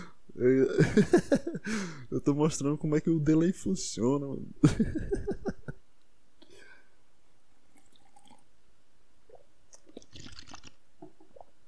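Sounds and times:
speech: 0:00.4 - 0:05.5
laughter: 0:04.7 - 0:05.7
person sipping and swallowing water: 0:07.7 - 0:08.4, 0:09.7 - 0:11.6.

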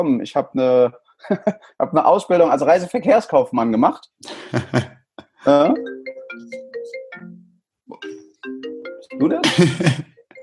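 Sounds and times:
speech: 0:00.0 - 0:06.6, 0:09.2 - 0:10.1
laughter: 0:04.3 - 0:05.0, 0:09.4 - 0:10.2
phone ringing with a bright melodic ringtone: 0:05.5 - 0:10.4.

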